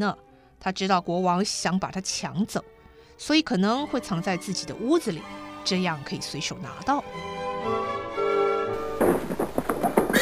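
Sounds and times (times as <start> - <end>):
speech: 0.0 - 8.0
horse hooves clopping of a horse-drawn carriage pulling up at a house: 8.8 - 10.2.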